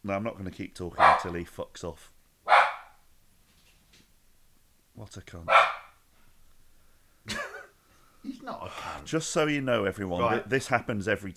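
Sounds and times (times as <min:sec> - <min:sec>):
speech: 0:00.0 - 0:02.2, 0:05.0 - 0:05.7, 0:07.2 - 0:07.5, 0:08.2 - 0:11.3
single sharp dog bark: 0:01.0 - 0:01.4, 0:02.5 - 0:03.0, 0:05.5 - 0:06.0.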